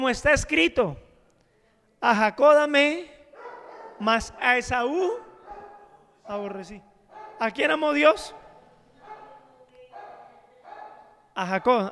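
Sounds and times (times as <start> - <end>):
speech: 0.0 - 1.0, 2.0 - 3.2, 4.0 - 5.2, 6.3 - 8.4, 11.4 - 11.9
small agitated dog yapping: 3.4 - 4.0, 5.2 - 6.0, 7.1 - 7.5, 8.3 - 11.1.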